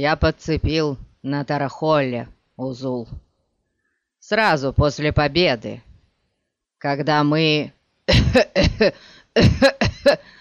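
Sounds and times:
speech: 0.0s - 3.2s, 4.2s - 5.9s, 6.8s - 10.3s
man with a disease-disfigured face coughing convulsively: 8.1s - 10.3s.

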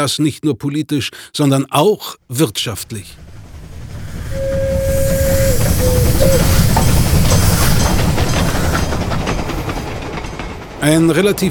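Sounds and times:
speech: 0.0s - 3.2s, 10.8s - 11.4s
railway train running on tracks with rumble and rhythmic rattling: 3.0s - 11.4s
railway train horn: 4.2s - 7.1s.

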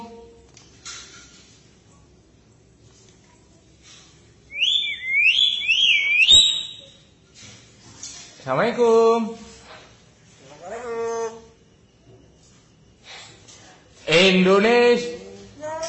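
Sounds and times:
common hill myna whistling: 4.5s - 7.1s
speech: 8.5s - 9.5s, 14.2s - 15.1s.

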